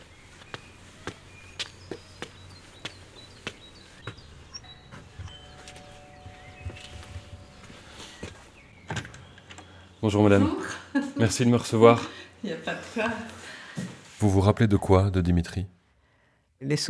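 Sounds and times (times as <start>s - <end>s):
footsteps climbing outdoor steps: 0.0s - 9.9s, 13.7s - 14.2s
faint birds: 0.0s - 13.7s
sustained electric doorbell buzz: 4.5s - 9.9s
speech: 10.0s - 13.4s, 14.2s - 15.8s, 16.6s - 16.8s.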